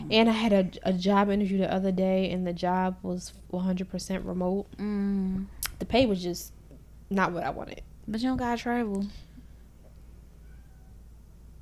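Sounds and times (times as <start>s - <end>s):
speech: 0.1s - 9.2s
cat meowing: 10.4s - 10.9s.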